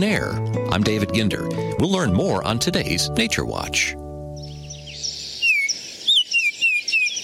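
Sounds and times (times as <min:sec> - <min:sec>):
speech: 0:00.0 - 0:04.0
male northern oriole flute-like whistled call: 0:04.4 - 0:07.2.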